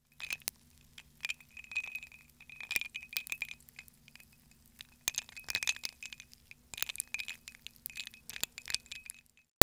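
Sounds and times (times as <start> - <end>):
ice clinking in a glass in a kitchen: 0.0 - 9.4.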